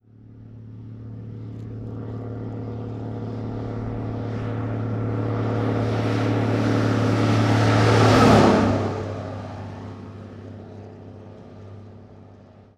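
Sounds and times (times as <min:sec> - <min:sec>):
1954 big rig truck passing fast outdoors: 0:02.0 - 0:10.6.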